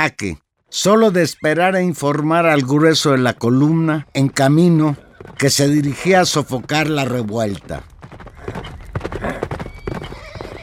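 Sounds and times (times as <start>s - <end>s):
speech: 0.0s - 8.8s
horses galloping: 0.0s - 10.6s
horse whinnying: 8.2s - 10.6s.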